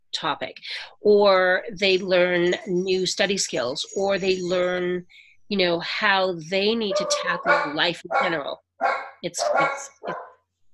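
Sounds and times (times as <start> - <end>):
speech: 0.1 - 10.2
small Shih Tzu dogs barking: 6.8 - 10.4.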